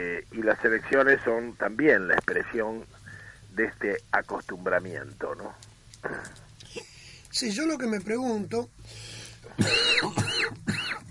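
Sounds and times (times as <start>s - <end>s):
speech: 0.0s - 3.0s, 3.6s - 6.4s, 7.3s - 10.2s
person coughing with short raspy bursts: 9.5s - 11.0s.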